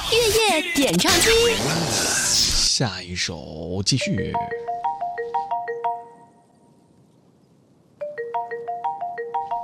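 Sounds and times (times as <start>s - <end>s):
speech: 0.2s - 2.2s, 2.8s - 4.7s
phone ringing with a bright melodic electronic ringtone: 4.0s - 6.5s, 8.0s - 9.6s.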